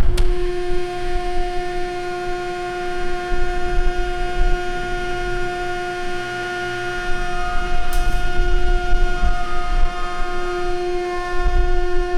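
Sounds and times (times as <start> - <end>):
industrial jaw crusher running: 0.2 - 12.1.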